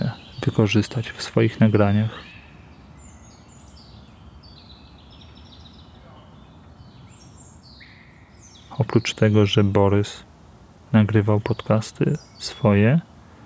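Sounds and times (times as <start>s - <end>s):
several birds singing and chirping: 0.0s - 13.4s
speech: 0.5s - 2.4s, 8.9s - 10.3s, 10.9s - 13.1s.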